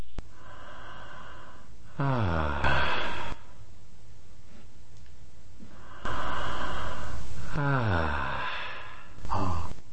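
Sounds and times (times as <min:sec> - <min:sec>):
emphasized exhale and inhale breathing: 0:00.3 - 0:03.6, 0:05.6 - 0:09.8.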